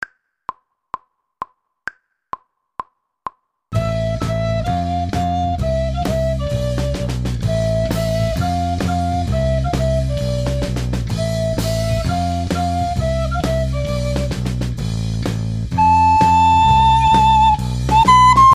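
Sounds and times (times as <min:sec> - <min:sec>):
descant recorder: 0:03.8 - 0:14.4, 0:15.7 - 0:18.5.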